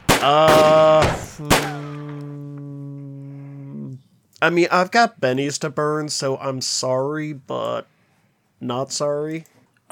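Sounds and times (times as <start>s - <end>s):
heavy gunfire bursts with ringing tone: 0.0s - 2.2s
speech: 0.2s - 1.5s, 4.4s - 7.9s, 8.6s - 9.9s.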